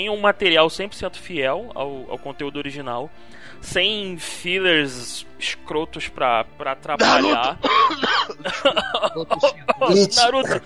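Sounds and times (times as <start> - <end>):
speech: 0.0 - 10.6
laughter: 7.0 - 10.6
person coughing: 7.0 - 10.6.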